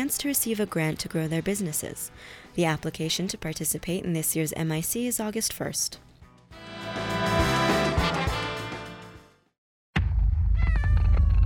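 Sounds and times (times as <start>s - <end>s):
speech: 0.0s - 6.1s
bass-heavy hip-hop beat: 6.6s - 9.0s
cat-like meows in music: 10.6s - 11.4s.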